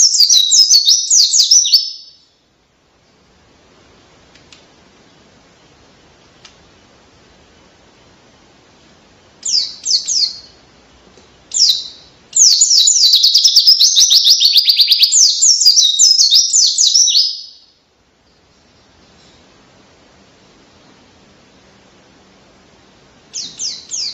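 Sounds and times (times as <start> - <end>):
pleci bird singing fast high buzzy trills: 0.0 - 2.4, 9.4 - 10.7, 11.5 - 17.8, 23.2 - 24.1.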